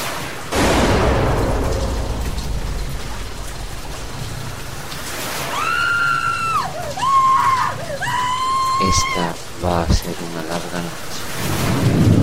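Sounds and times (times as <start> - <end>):
single loud gunshot inside a house: 0.5 - 5.5
woman's long high wavering scream: 5.4 - 9.4
speech: 8.9 - 12.1.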